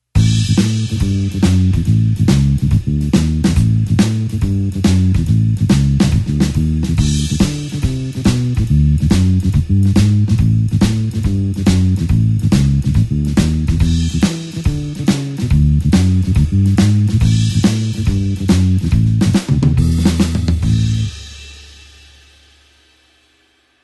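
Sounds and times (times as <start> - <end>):
blues shuffle bassline in A: 0.0 - 21.8.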